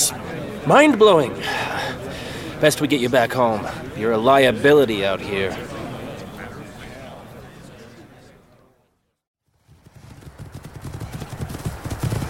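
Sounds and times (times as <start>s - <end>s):
speech: 0.1s - 1.5s, 2.6s - 5.7s
hooves of riding mounts as riders leave a camp: 9.6s - 12.2s.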